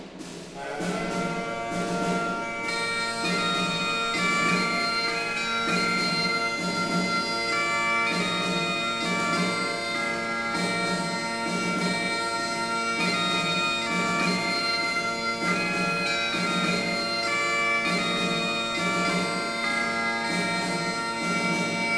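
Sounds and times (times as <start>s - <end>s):
bagpipes: 0.5s - 21.9s.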